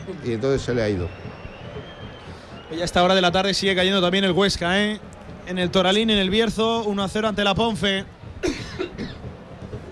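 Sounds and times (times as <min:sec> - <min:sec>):
speech: 0:00.1 - 0:01.3, 0:02.7 - 0:08.7
sharp cough: 0:08.4 - 0:09.2.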